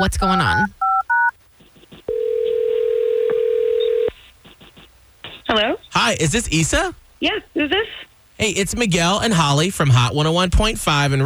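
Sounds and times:
speech: 0:00.0 - 0:00.8, 0:05.5 - 0:11.2
touch-tone dialing beep of a phone call being placed: 0:00.8 - 0:01.3, 0:02.1 - 0:04.1
steady loud telephone tone: 0:02.1 - 0:04.1.

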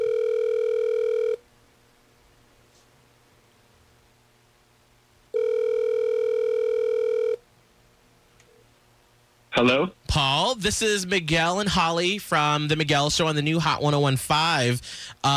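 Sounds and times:
telephone ringing down the line with buzzy electronic ring tones: 0:00.0 - 0:01.4, 0:05.3 - 0:07.4
speech: 0:09.6 - 0:15.3.

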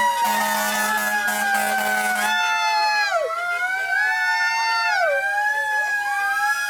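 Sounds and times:
low horn-like drone: 0:00.0 - 0:02.4
police car and fire truck sirens wailing in a graduation parade: 0:00.0 - 0:06.6
traffic noise: 0:00.0 - 0:06.6.

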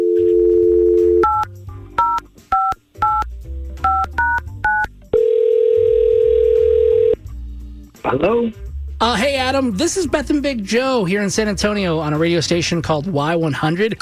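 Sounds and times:
long loud telephone ringing tone on the line: 0:00.0 - 0:01.4, 0:05.2 - 0:07.2
telephone dial tone: 0:00.0 - 0:01.4, 0:03.9 - 0:07.2
telephone keypad dialing beeps: 0:00.0 - 0:05.3
speech: 0:08.1 - 0:13.9.

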